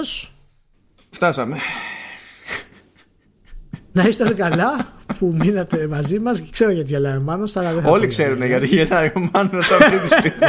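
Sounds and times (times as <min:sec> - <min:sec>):
speech: 0:00.0 - 0:00.3, 0:01.1 - 0:01.8, 0:04.0 - 0:10.4
heavy wheezing breath: 0:01.5 - 0:03.0
laughter: 0:02.5 - 0:06.5, 0:09.0 - 0:10.4.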